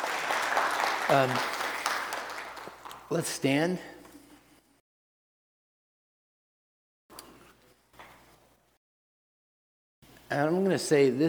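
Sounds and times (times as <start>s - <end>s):
audience clapping: 0.0s - 3.1s
speech: 1.1s - 1.6s, 3.1s - 4.0s, 10.3s - 11.2s.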